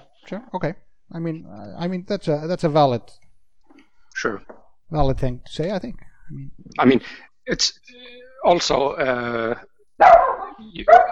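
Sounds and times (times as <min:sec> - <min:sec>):
speech: 0:00.3 - 0:03.2, 0:04.2 - 0:11.1
dog barking: 0:10.0 - 0:11.1.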